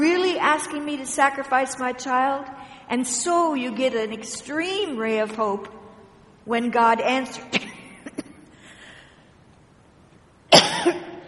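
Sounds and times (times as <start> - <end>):
speech: 0.6 - 5.8, 6.4 - 7.7
person coughing: 7.5 - 8.6, 10.5 - 11.2.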